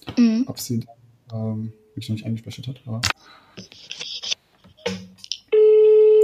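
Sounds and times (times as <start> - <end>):
speech: 0.2 - 4.0
ringing tone of a call to a mobile phone: 5.5 - 6.2.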